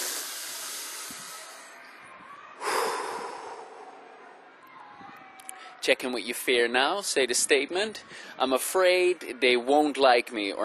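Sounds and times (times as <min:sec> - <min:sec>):
deep breath during a guided relaxation exercise: 0:00.0 - 0:01.8, 0:02.6 - 0:04.2, 0:08.0 - 0:08.4
speech: 0:05.8 - 0:10.6.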